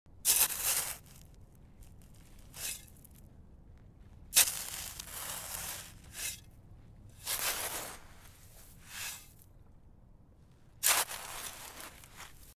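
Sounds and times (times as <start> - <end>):
garden trowel: 0.2 - 1.2, 2.4 - 3.1, 4.3 - 6.5, 7.2 - 8.0, 8.6 - 9.4, 10.8 - 12.5.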